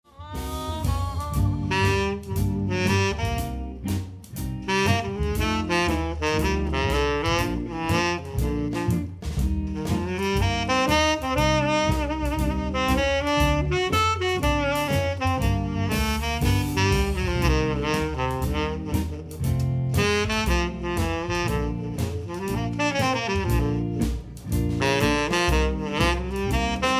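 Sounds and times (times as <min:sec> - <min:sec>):
saxophone jazz: 0:00.0 - 0:26.9.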